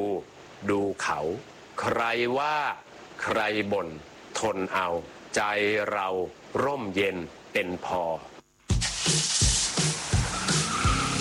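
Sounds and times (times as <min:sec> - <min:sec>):
speech: 0:00.0 - 0:08.3, 0:09.1 - 0:09.4
car engine started and revving loudly: 0:09.9 - 0:11.1
car tires squealing and skidding: 0:10.0 - 0:11.1.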